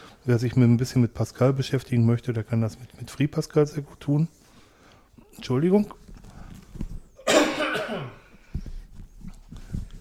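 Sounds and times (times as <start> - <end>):
breathing: 0.0 - 0.2, 4.4 - 5.3, 6.2 - 6.8, 8.2 - 8.9
speech: 0.2 - 4.4, 5.4 - 6.0
harsh throat clearing: 7.2 - 8.3.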